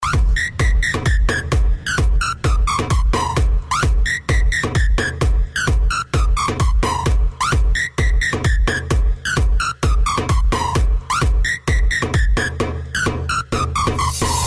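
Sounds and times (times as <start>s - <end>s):
siren: 0.0s - 5.2s
breakbeat drums: 0.0s - 14.4s.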